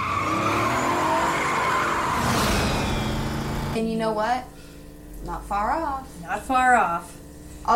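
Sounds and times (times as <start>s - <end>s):
truck tires squealing while speeding away after swerving on the road: 0.0s - 3.7s
speech: 3.8s - 4.6s, 5.2s - 7.7s.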